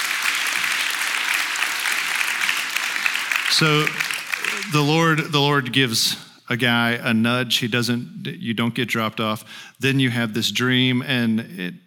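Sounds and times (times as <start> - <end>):
audience applause: 0.0 - 5.4
speech: 3.5 - 4.1, 4.7 - 11.8.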